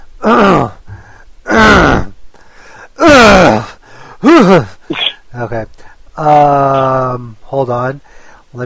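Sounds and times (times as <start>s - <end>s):
vocal warm-up grunts: 0.2s - 0.8s, 1.5s - 2.2s, 3.0s - 5.2s
throat clearing: 4.3s - 5.2s
speech: 7.7s - 8.6s.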